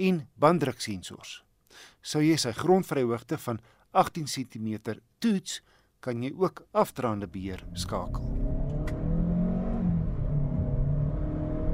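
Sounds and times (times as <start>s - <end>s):
speech: 0.0s - 8.4s
Chery car 1.5 turbo petrol engine with CVT automatic gearbox accelerating: 7.5s - 11.7s.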